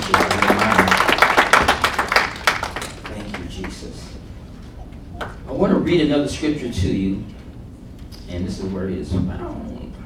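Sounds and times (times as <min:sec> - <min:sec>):
congregation clapping hands during a church worship service: 0:00.0 - 0:04.0
speech: 0:05.9 - 0:07.4, 0:08.3 - 0:09.7.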